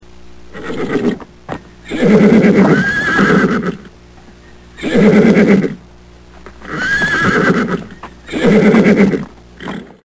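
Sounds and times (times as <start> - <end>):
horse neighing: 0.5 - 1.2, 1.9 - 3.9, 4.8 - 5.8, 6.6 - 10.0.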